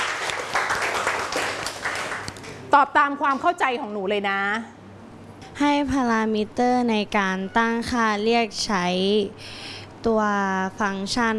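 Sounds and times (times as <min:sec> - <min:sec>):
classroom applauding a classmate: 0:00.0 - 0:02.7
speech: 0:02.7 - 0:04.8, 0:05.6 - 0:11.3.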